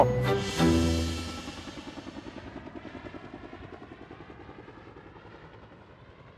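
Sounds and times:
helicopter engine roaring: 0.0s - 6.3s.

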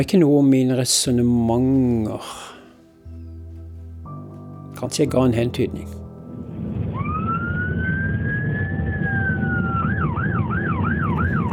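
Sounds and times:
speech: 0.0s - 2.5s, 4.8s - 6.0s
emergency siren wailing and yelping: 6.5s - 11.5s.

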